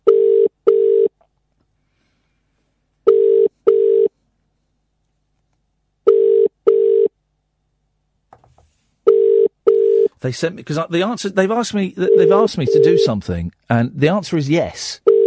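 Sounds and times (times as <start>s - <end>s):
double-pulse ringback tones of outgoing phone call: 0.1s - 1.1s, 3.1s - 4.1s, 6.1s - 7.1s, 9.1s - 10.2s, 12.0s - 13.1s, 15.1s - 15.2s
speech: 10.2s - 15.1s.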